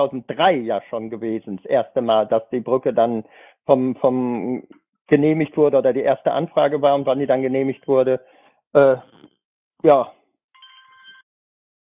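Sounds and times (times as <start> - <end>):
speech: 0.0 - 9.2, 9.8 - 10.2
telephone ringing with bright electronic trill: 10.6 - 11.3.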